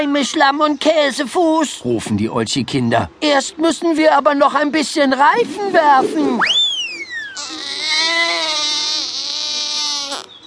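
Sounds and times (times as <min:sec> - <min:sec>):
speech: 0:00.0 - 0:06.7
baby crying loudly: 0:06.9 - 0:10.3.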